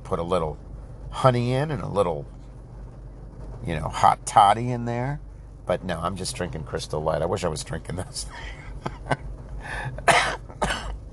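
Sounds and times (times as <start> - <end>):
speech: 0.1 - 2.4, 3.6 - 10.1
wet raspy chesty coughing fit: 10.0 - 11.0.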